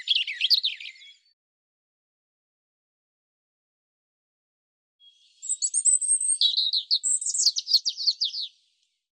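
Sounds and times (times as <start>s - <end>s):
European robin singing: 0.0s - 1.4s, 5.0s - 8.8s.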